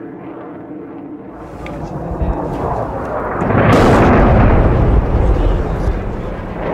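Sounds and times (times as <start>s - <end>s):
heavy blast with sustained roaring boom: 1.4s - 6.7s
low continuous rumble: 1.4s - 6.7s.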